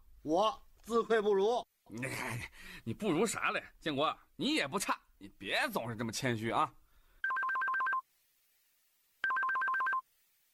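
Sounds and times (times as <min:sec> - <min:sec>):
speech: 0:00.2 - 0:06.8
mobile phone ringtone of rapid alternating electronic beeps: 0:07.2 - 0:08.0, 0:09.2 - 0:10.0.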